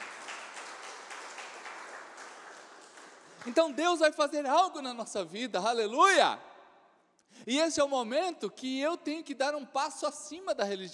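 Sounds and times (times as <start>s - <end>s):
large crowd at a worship service clapping and applauding: 0.0s - 4.1s
speech: 3.4s - 6.5s, 7.4s - 10.9s.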